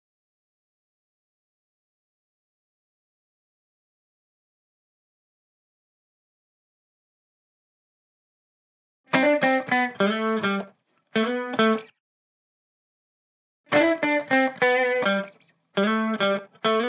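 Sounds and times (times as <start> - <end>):
lead guitar in E minor: 9.1 - 12.0, 13.7 - 16.8.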